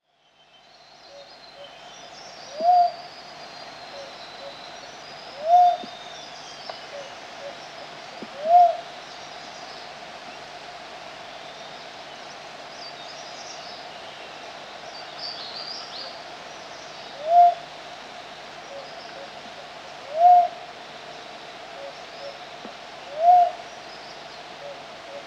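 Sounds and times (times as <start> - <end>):
Philippine cuckoo dove: 1.1 - 3.1, 3.8 - 6.1, 6.7 - 8.9, 17.1 - 17.7, 18.7 - 20.7, 21.8 - 25.2.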